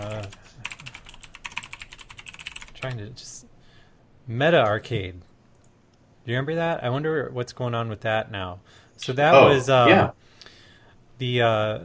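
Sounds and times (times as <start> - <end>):
very loud typing on a computer keyboard: 0.0 - 3.0
speech: 2.8 - 3.6, 4.2 - 5.3, 6.3 - 10.4, 11.2 - 11.8
brief voiced sound: 9.4 - 10.1.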